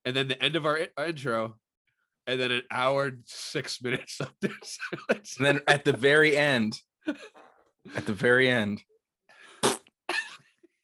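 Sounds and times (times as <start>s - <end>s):
speech: 0.1s - 1.6s, 2.3s - 8.9s
laughter: 3.8s - 7.3s, 7.9s - 8.4s
fart: 9.6s - 9.9s.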